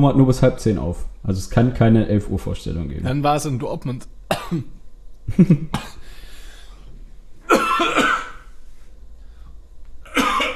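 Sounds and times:
speech: 0.0 - 6.0
faint room noise: 0.0 - 10.5
harsh coughing fit: 4.3 - 4.8, 5.7 - 6.0, 7.5 - 8.5, 10.1 - 10.5.

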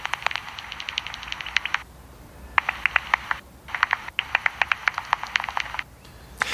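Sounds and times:
bat calls through a handheld bat detector on a bridge: 0.0 - 1.8, 2.6 - 5.8
steady hiss: 0.0 - 6.5.

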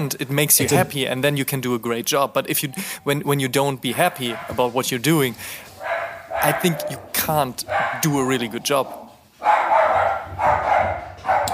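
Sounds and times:
speech: 0.0 - 5.7, 6.4 - 9.6
dog barking: 3.9 - 4.6, 5.8 - 11.5.

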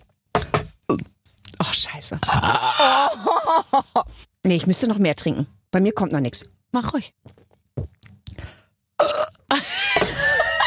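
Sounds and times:
speech: 0.9 - 8.5
laughter: 2.8 - 4.1, 9.5 - 10.6
girly burp after drinking: 9.0 - 10.1.

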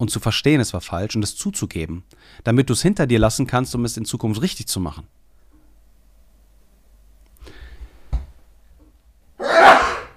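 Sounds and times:
speech: 0.0 - 5.3
soft breathy intake: 2.1 - 2.4
single loud sneeze: 9.4 - 10.1.

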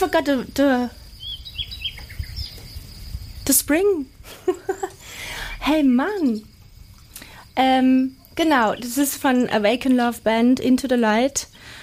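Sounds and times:
speech: 0.0 - 1.0, 3.5 - 6.5, 7.6 - 11.8
small birds chirping: 0.0 - 11.8.

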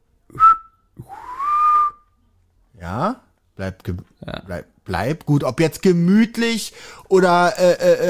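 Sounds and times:
person whistling bird-like calls: 0.3 - 2.1
speech: 2.9 - 8.0.

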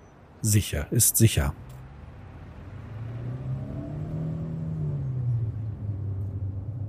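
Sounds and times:
speech: 0.4 - 1.7
car engine humming as the vehicle moves off: 1.6 - 6.8.

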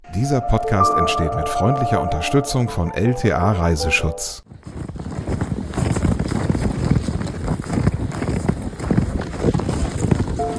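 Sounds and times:
speech: 0.2 - 4.6
horse hooves crunching through deep snow: 4.5 - 10.5.

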